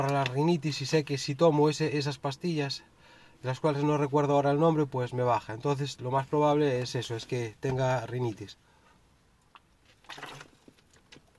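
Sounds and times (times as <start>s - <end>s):
speech: 0.0s - 8.7s
person drinking water: 9.5s - 11.3s.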